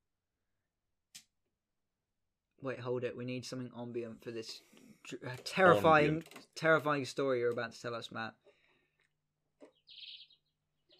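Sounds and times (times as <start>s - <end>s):
speech: 2.6s - 8.4s
birds chirping and tweeting with a long high trill: 9.6s - 10.9s.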